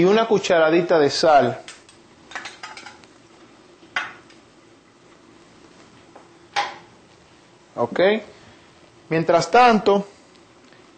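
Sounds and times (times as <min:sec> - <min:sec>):
speech: 0:00.0 - 0:01.7, 0:07.8 - 0:08.4, 0:09.1 - 0:10.1
metallic kitchen clatter of a pot of plantains put on to boil: 0:02.3 - 0:03.0.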